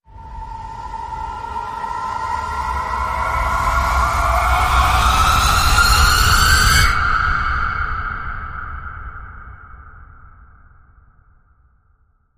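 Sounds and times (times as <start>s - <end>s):
harpy screech rise: 0.6s - 8.2s.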